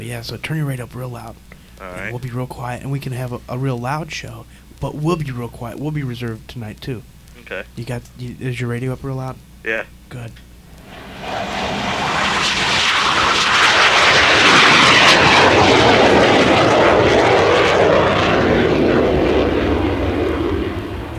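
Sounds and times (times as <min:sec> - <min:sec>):
speech: 0:00.0 - 0:10.5
airplane roaring overhead near an airport: 0:10.8 - 0:21.1.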